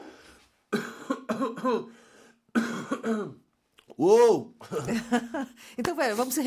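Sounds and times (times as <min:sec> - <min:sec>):
hoarse singer coughing: 0:00.7 - 0:03.5
speech: 0:01.4 - 0:02.1, 0:03.0 - 0:06.4.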